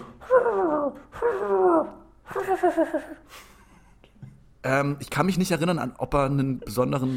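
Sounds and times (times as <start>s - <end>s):
person imitating a fox's call with yelps: 0.2s - 2.1s
speech: 0.4s - 3.5s, 4.6s - 7.1s.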